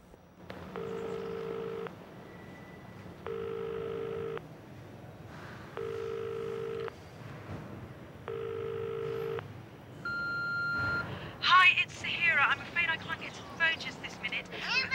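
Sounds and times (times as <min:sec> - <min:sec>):
faint hum: 0:00.0 - 0:14.9
phone ringback tone: 0:00.7 - 0:04.4, 0:05.8 - 0:06.9, 0:08.3 - 0:09.4, 0:10.1 - 0:11.1.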